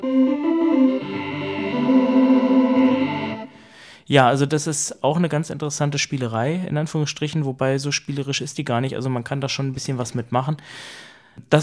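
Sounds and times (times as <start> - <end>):
sustained buzzy vocoder synth tone with a vowel-shaped formant played on a synthesizer keyboard: 0.0 - 3.6
speech: 4.1 - 11.6.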